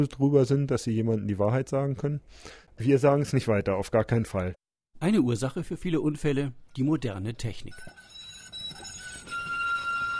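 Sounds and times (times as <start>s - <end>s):
speech: 0.0s - 8.0s
modern tram electric whine: 8.5s - 10.1s.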